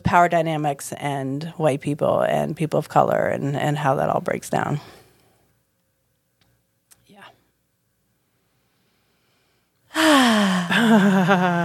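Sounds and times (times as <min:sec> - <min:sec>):
speech: 0:00.1 - 0:05.0, 0:10.0 - 0:11.6
deep drawn-out voiced breath like a loud groaning sigh: 0:09.9 - 0:10.9.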